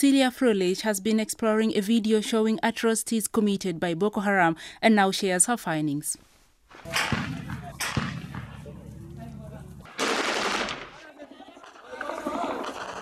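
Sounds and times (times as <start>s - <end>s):
speech: 0.0s - 7.4s
sharp loud gunshots outdoors: 6.7s - 9.0s, 9.9s - 11.1s
rapid gunfire: 6.9s - 8.6s, 9.9s - 11.1s
laughter: 10.9s - 12.9s.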